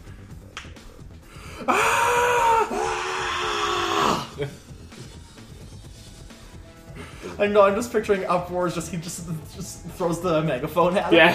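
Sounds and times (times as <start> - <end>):
person yelling high-pitched: 1.6 - 4.4
speech: 4.4 - 4.7, 7.4 - 11.3.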